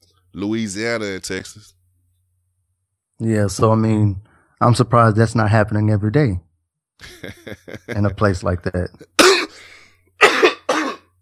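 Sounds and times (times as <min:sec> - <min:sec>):
speech: 0:00.4 - 0:01.8, 0:03.2 - 0:06.4, 0:07.0 - 0:09.2
laughter: 0:07.0 - 0:08.3
person coughing and clearing throat: 0:09.0 - 0:11.2.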